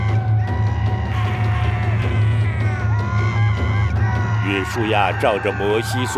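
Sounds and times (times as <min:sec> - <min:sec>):
mass of male warrior voices yelling a war cry charging down a hillside: 0:00.0 - 0:06.1
speech: 0:04.5 - 0:06.1.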